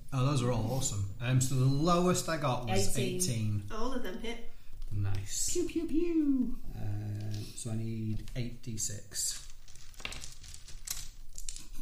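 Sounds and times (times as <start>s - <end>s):
speech: 0.1s - 9.5s
rustling and crinkling while rummaging for dice: 7.1s - 11.8s.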